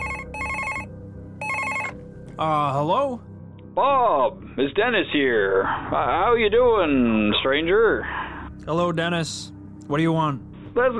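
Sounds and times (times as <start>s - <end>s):
telephone ringing: 0.0s - 2.0s
speech: 2.4s - 10.9s.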